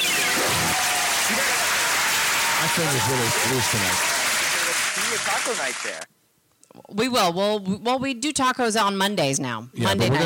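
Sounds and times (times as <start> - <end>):
applause: 0.0 - 6.1
speech: 2.6 - 4.1, 5.2 - 6.2, 6.9 - 10.2.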